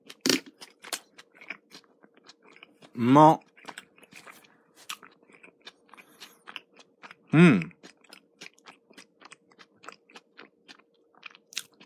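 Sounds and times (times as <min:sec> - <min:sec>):
person chewing sweet-savory stewed liver from a convenience store: 0:00.0 - 0:11.8
speech: 0:03.0 - 0:03.5, 0:07.4 - 0:07.7.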